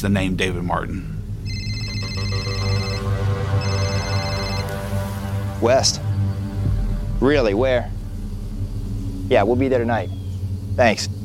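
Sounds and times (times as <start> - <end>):
speech: 0.0 - 1.2, 5.6 - 6.0, 7.2 - 8.0, 9.3 - 10.2, 10.8 - 11.2
steady low hum: 0.0 - 11.2
telephone ringing in electronic bursts: 1.5 - 4.8.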